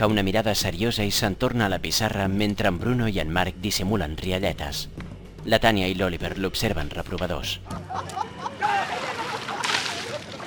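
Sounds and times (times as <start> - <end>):
speech: 0.0 - 8.3
laughter: 7.7 - 10.4
water splashing from bottles and water pistols: 8.6 - 10.4.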